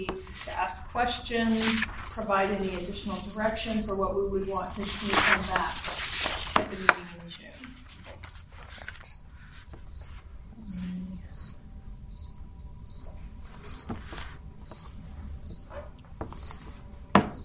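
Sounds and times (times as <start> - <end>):
speech: 0.0 - 5.9, 6.6 - 7.8
low murmuring hum: 0.0 - 17.1
cricket chirping: 9.9 - 13.9, 14.6 - 16.6, 17.3 - 17.4.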